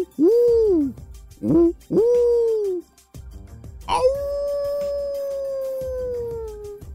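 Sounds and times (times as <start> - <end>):
speech: 0.0 - 2.3
long wolf-like howl sliding downward: 3.9 - 6.9.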